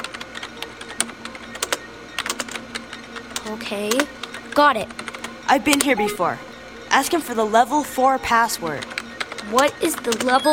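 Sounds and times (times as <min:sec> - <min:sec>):
typing on a computer keyboard: 0:00.0 - 0:05.9, 0:08.7 - 0:10.5
speech: 0:03.5 - 0:10.5.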